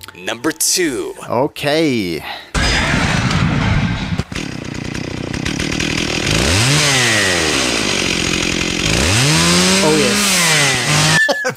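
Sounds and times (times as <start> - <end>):
speech: 0.2 - 2.5
chainsaw bayonet revving: 2.8 - 11.2.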